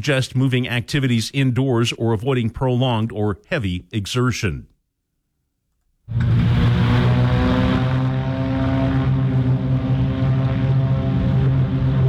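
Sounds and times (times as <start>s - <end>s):
speech: 0.0s - 4.7s, 6.1s - 6.4s
three Beechcraft Bonanza propeller planes taking off from La Crosse Regional Airport: 6.1s - 12.0s.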